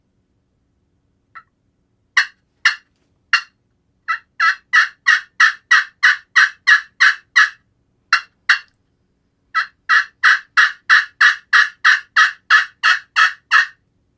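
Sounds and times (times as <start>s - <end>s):
raspy loud yelps from an aluminum-surface friction turkey call: 2.2s - 8.7s, 9.6s - 13.8s.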